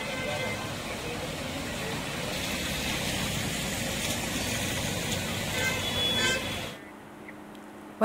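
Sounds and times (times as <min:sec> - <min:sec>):
car horn toots: 0:00.0 - 0:00.7, 0:05.5 - 0:06.8
engines rumbling: 0:00.0 - 0:08.0
road traffic on flooded city roads during monsoon rain in India: 0:00.0 - 0:08.0.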